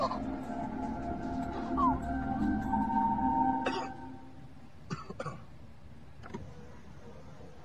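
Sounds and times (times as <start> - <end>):
steady low rumble: 0.0 - 4.8
person coughing: 3.6 - 4.0.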